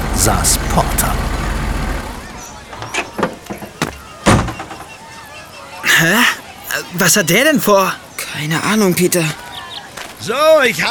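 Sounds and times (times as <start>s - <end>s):
large truck engine rumble driving in through a gate: 0.0s - 5.0s
speech: 0.2s - 1.2s, 6.0s - 6.3s, 6.9s - 9.4s, 10.2s - 10.8s
sharp clanks and knocks: 2.6s - 4.9s
laughter: 5.5s - 7.0s.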